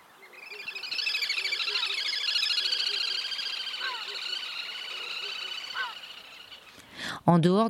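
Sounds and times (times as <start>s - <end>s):
faint chirps: 0.0s - 6.8s
little grebe shrill rolled whinnying trill in the breeding season: 3.5s - 6.2s
speech: 7.3s - 7.6s.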